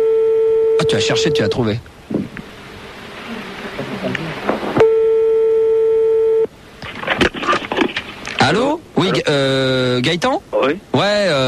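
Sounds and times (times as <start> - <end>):
telephone ringing tone of an outgoing call: 0.0 - 1.6, 4.8 - 6.5
noise: 0.0 - 11.4
speech: 0.8 - 2.2, 10.0 - 11.4.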